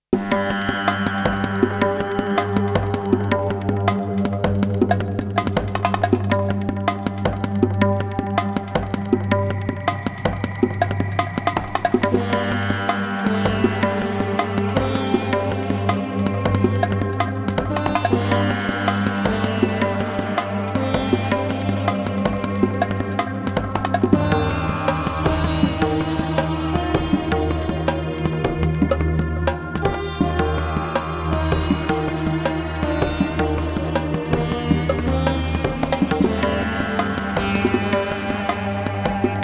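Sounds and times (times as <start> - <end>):
raga beat music: 0.2 - 39.4.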